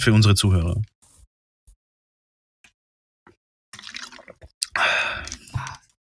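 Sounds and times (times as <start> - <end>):
speech: 0.0 - 0.9
sips of water: 3.8 - 6.0
wet gulping: 3.8 - 6.0.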